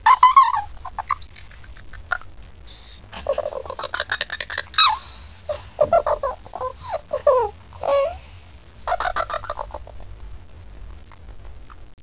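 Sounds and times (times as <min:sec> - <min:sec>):
elf laughing: 0:00.0 - 0:02.3, 0:02.9 - 0:08.2, 0:08.8 - 0:10.2.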